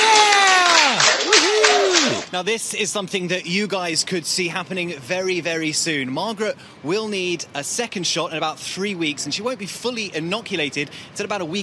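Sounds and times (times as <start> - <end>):
group of nurses clapping along: 0.0 - 2.3
voices cheering and calling out loudly: 0.0 - 2.3
speech: 2.3 - 11.6.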